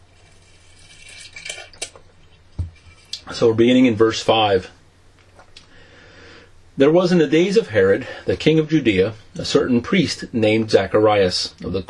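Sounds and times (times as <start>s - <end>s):
person sipping water: 0.1s - 2.0s
speech: 3.3s - 4.8s, 6.8s - 11.8s.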